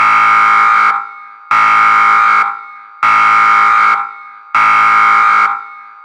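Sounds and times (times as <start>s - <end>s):
large evacuation danger alarm in a nuclear control room: 0.0s - 6.0s.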